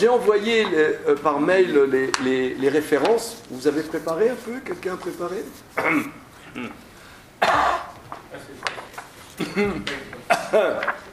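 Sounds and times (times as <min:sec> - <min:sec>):
speech: 0:00.0 - 0:08.7, 0:09.6 - 0:11.1
harsh coughing: 0:05.8 - 0:06.8, 0:07.4 - 0:08.0, 0:09.4 - 0:10.8
throat clearing: 0:05.8 - 0:06.8, 0:07.4 - 0:08.0, 0:09.4 - 0:10.9.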